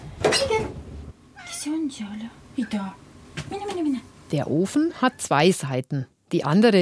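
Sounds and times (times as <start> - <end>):
cat meowing to go outside: 1.4 - 1.8
speech: 1.6 - 6.8.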